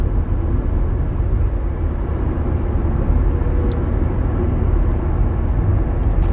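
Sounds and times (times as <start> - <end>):
big commuter bus engine drone: 0.0 - 6.3.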